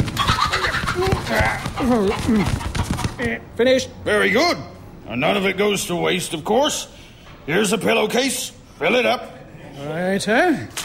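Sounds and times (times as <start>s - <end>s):
bird squawking and warbling while being plucked: 0.2s - 3.2s
speech: 1.3s - 2.6s, 3.2s - 10.8s.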